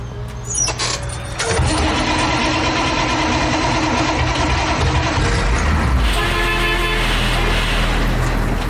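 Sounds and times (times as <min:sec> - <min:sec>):
city bus engine idling in Mexico City: 0:00.0 - 0:08.6
city bus horn toot in Mexico City: 0:06.0 - 0:08.2.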